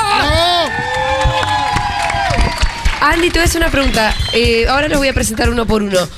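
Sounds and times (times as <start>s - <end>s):
high whoops: 0.0s - 3.1s
crowd cheering and clapping: 0.0s - 5.4s
speech: 3.0s - 6.1s.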